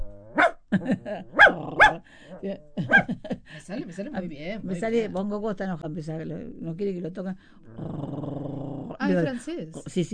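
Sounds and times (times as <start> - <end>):
laughter: 0.7 - 1.4, 2.8 - 4.1
speech: 0.8 - 10.1
person imitating wheezy dog barks: 1.3 - 3.1.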